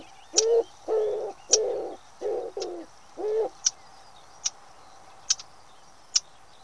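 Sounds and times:
common wood pigeon cooing: 0.0s - 3.6s.

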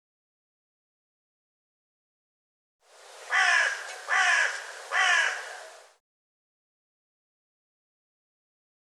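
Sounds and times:
bird giving harsh hoarse caws: 3.3s - 5.8s.

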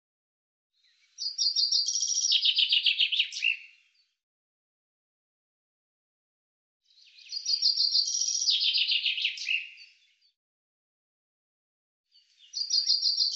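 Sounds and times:
common chaffinch song: 0.9s - 4.2s, 6.9s - 10.3s, 12.1s - 13.3s.

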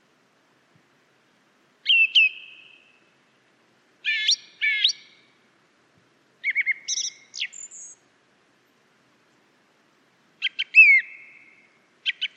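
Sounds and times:
song thrush singing loud clear whistled phrases: 1.8s - 5.5s, 6.4s - 8.1s, 10.4s - 12.3s.

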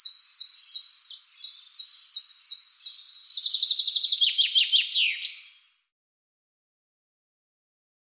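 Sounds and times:
common chaffinch song with rattling trill: 0.0s - 5.9s.

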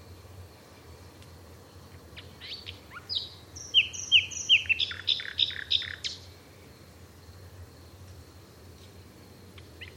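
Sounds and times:
bird chirping: 2.2s - 6.3s, 9.6s - 9.9s.

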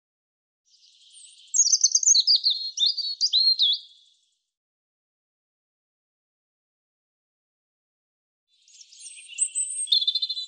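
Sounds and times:
European robin singing: 0.7s - 4.2s, 8.5s - 10.4s.

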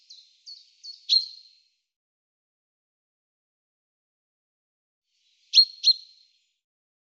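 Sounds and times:
Common chaffinch calls: 0.0s - 1.5s, 5.4s - 6.2s.

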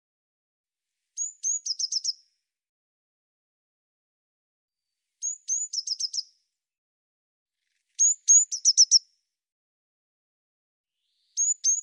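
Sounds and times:
Eurasian blue tit singing thin high whistles and bright notes: 1.2s - 2.2s, 5.2s - 6.3s, 11.3s - 11.8s.

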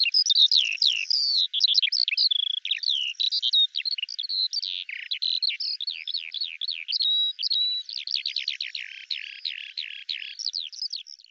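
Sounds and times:
Eurasian skylark song: 0.0s - 11.2s.

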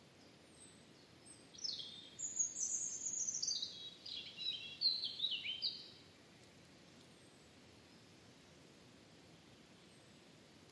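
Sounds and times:
European robin singing: 0.6s - 6.0s.

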